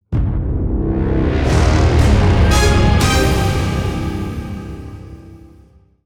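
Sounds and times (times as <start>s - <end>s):
jackpot intro splash music: 1.0s - 5.7s.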